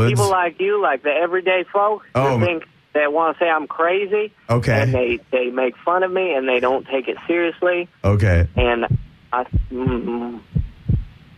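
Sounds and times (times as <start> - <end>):
speech: 0.0 - 10.6
heartbeat-like low thumps heard over a phone line: 8.4 - 11.2.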